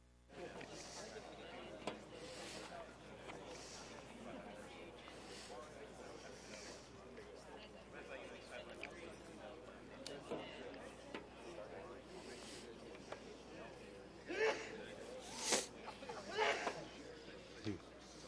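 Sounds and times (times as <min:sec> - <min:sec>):
murmuring group chatter: 0:00.3 - 0:18.2
sharp sneeze: 0:14.3 - 0:16.8.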